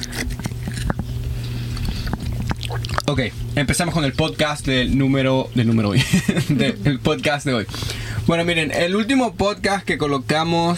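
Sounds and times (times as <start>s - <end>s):
cookies being eaten, crunching: 0.0s - 4.5s
steady low hum: 0.0s - 10.7s
speech: 3.1s - 10.7s
laughter: 5.8s - 7.0s.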